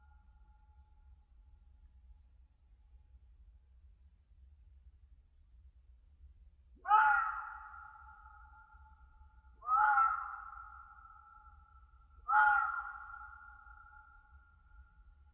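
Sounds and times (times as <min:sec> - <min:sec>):
red fox screaming in winter in a European mountain forest: 0:06.9 - 0:07.8, 0:09.6 - 0:10.6, 0:12.3 - 0:13.2.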